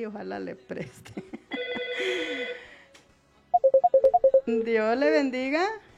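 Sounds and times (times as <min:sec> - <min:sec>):
speech: 0:00.0 - 0:01.4, 0:04.5 - 0:05.9
short beeps alternating between two pitches after a dropped phone call: 0:03.6 - 0:04.4
steady electronic phone-line tone: 0:03.6 - 0:04.4.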